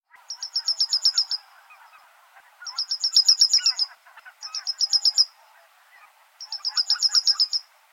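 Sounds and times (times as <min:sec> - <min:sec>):
bird song: 0:00.1 - 0:07.7.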